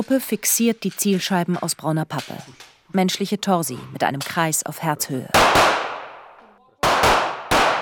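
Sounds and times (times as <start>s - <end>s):
speech: 0.0s - 5.8s
pistol shots on an indoor shooting range: 5.3s - 7.8s.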